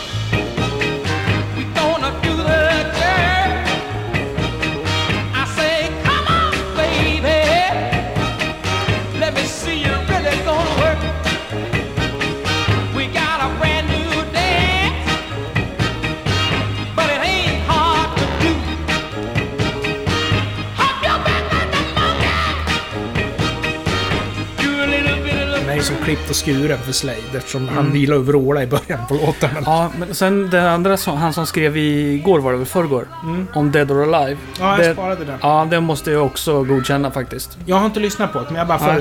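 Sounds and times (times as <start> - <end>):
upbeat 1960s rock song by a full band: 0.0 - 28.2
speech: 26.3 - 39.0
laughter: 27.6 - 30.8.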